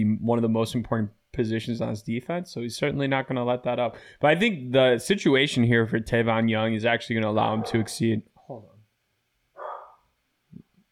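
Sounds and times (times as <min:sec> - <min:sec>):
speech: 0:00.0 - 0:08.7
Chinook dog barking: 0:07.5 - 0:07.9, 0:09.6 - 0:10.1.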